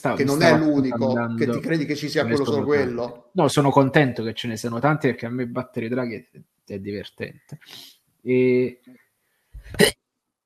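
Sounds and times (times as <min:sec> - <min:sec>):
speech: 0:00.0 - 0:09.0, 0:09.6 - 0:10.0
person sneezing: 0:09.6 - 0:10.0.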